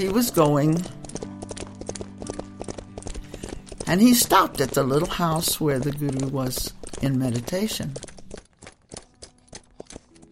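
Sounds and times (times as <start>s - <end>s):
speech: 0.0s - 1.0s, 3.9s - 8.1s
horse hooves plodding down a road: 0.0s - 10.3s.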